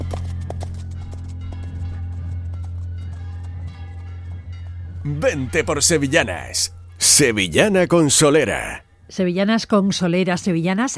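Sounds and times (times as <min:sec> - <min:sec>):
horse hooves clip-clopping: 0:00.0 - 0:04.8
speech: 0:05.0 - 0:10.9.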